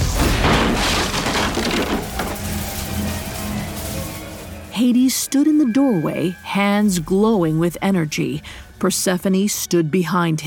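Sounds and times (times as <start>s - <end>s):
loud booming crash with splintering wood: 0.0s - 3.6s
rumbling crunching clatter of debris: 0.0s - 4.7s
speech: 4.8s - 10.4s.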